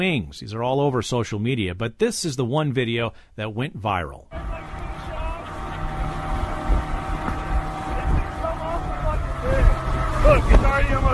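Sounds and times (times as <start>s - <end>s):
speech: 0.0s - 4.6s
motorboat engine droning in Florida: 4.3s - 11.1s
rushing water in a motorboat's wake: 4.4s - 11.1s
wind buffeting the microphone: 4.4s - 11.1s.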